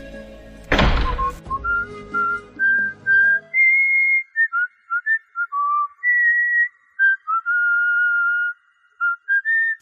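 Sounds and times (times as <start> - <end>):
dull thunk: 0.7 - 1.7
man casually whistling a wandering tune while walking out: 1.2 - 9.8.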